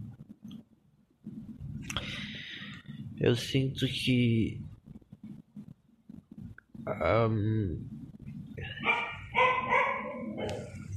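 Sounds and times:
speech: 3.2s - 4.7s, 7.0s - 7.9s
female dog barking angrily: 8.8s - 10.7s.

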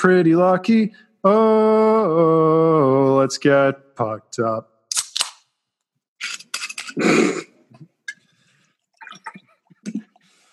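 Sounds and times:
speech: 0.0s - 4.7s, 7.0s - 7.5s
beer cracked open with a sharp hiss: 4.9s - 5.5s
faint fizzing of beer: 8.8s - 10.4s.

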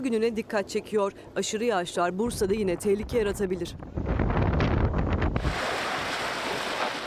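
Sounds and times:
speech: 0.0s - 3.9s
strong storm wind buffeting the microphone in Turkey: 2.2s - 6.8s
crashing surf: 5.4s - 7.0s.

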